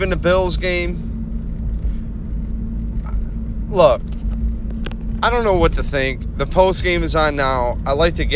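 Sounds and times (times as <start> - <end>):
speech: 0.0 - 1.1, 3.7 - 4.2, 5.2 - 8.3
aftermarket car exhaust rumbling: 0.0 - 8.3.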